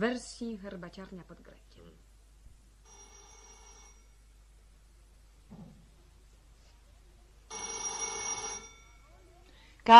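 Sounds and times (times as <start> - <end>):
speech: 0.0 - 2.1
telephone bell ringing: 2.8 - 4.2, 7.5 - 9.1.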